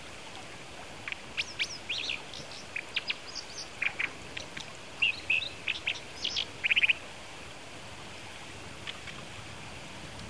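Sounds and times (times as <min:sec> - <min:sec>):
background hiss: 0:00.0 - 0:10.2
Brown dipper giving sharp high chirping calls in Kitami: 0:01.3 - 0:07.0.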